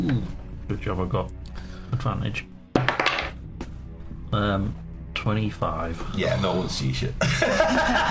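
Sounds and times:
speech: 0:00.0 - 0:02.5, 0:04.3 - 0:08.0
dice rolling on a tabletop: 0:02.8 - 0:03.3
laughter: 0:07.2 - 0:08.0.

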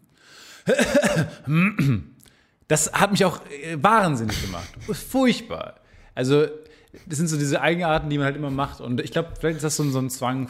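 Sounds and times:
person vocally imitating throat clearing after coughing: 0:00.6 - 0:02.2, 0:04.2 - 0:05.1
speech: 0:00.7 - 0:02.1, 0:02.7 - 0:10.4.

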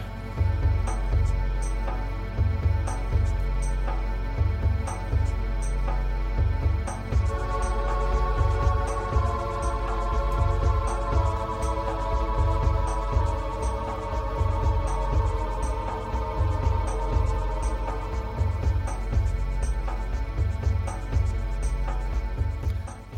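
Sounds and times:
tense driving video game castle-level music: 0:00.0 - 0:23.1.

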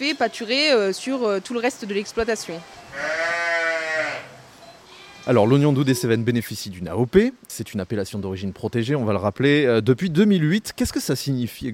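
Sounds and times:
speech: 0:00.0 - 0:03.2, 0:05.3 - 0:11.7
faint outdoor hush: 0:00.0 - 0:11.7
Tarasconnaise ewe bleating: 0:02.9 - 0:04.4.

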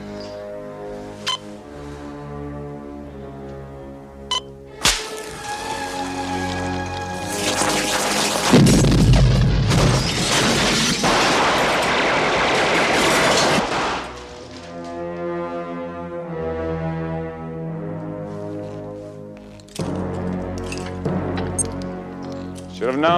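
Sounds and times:
steady music: 0:00.0 - 0:09.1, 0:14.0 - 0:23.1
gunfire volley: 0:07.6 - 0:14.2.

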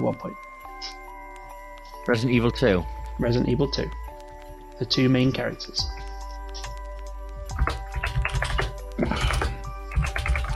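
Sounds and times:
speech: 0:00.0 - 0:01.0, 0:02.0 - 0:04.0, 0:04.8 - 0:06.1
rapid typing on a computer keyboard: 0:06.5 - 0:10.5.

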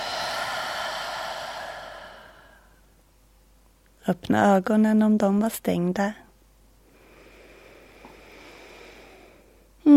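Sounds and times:
deep exhale: 0:00.0 - 0:03.0, 0:06.9 - 0:09.7
speech: 0:04.1 - 0:06.2.

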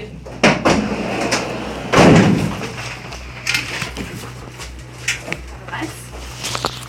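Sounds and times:
van rear doors clunking open: 0:00.4 - 0:03.8.

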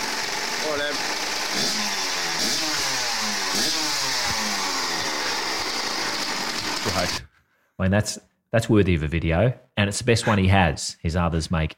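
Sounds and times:
Kawasaki motorbike engine revving: 0:00.0 - 0:07.2
speech: 0:07.0 - 0:07.2, 0:07.8 - 0:11.7.

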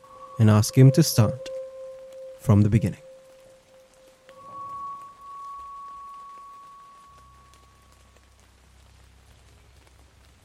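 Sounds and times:
thin sustained humming tone: 0:00.0 - 0:08.6
steady rain: 0:00.0 - 0:10.4
speech: 0:00.4 - 0:01.5, 0:02.4 - 0:03.0.

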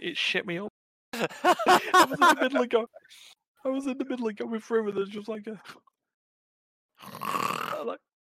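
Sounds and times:
speech: 0:00.0 - 0:05.9, 0:07.0 - 0:08.1
laughter: 0:01.2 - 0:03.2
loud rasping snore: 0:07.0 - 0:07.9.

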